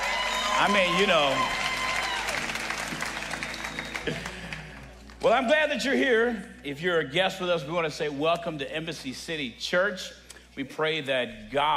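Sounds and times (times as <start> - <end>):
scattered whoops and cheers: 0.0 - 4.3
crowd clapping: 0.0 - 5.3
speech: 0.6 - 1.6, 4.0 - 4.3, 5.2 - 11.7.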